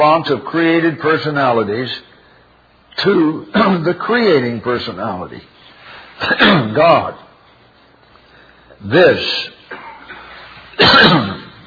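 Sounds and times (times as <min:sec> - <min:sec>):
speech: 0:00.0 - 0:02.1, 0:03.0 - 0:05.5, 0:06.2 - 0:07.2, 0:08.8 - 0:09.6, 0:10.8 - 0:11.4
single harsh throaty cough: 0:06.2 - 0:06.8, 0:09.7 - 0:11.6.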